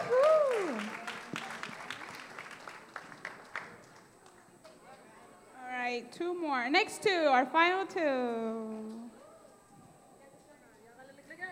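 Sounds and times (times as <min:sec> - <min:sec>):
small group clapping: 0:00.0 - 0:05.1
speech: 0:06.1 - 0:09.0.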